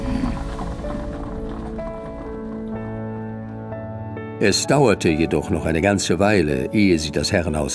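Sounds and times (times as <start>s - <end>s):
horse-drawn carriage rolling through a park: 0.0s - 3.8s
clatter of horse hooves pulling a carriage through a park: 0.0s - 4.0s
speech: 4.4s - 7.7s.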